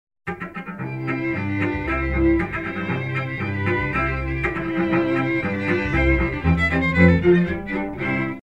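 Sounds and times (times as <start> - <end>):
strings playing: 0.3 - 8.4.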